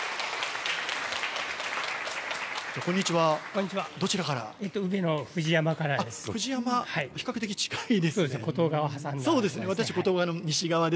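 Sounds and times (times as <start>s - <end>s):
audience applause: 0.0s - 6.4s
laughter: 2.8s - 10.9s
speech: 2.8s - 10.9s.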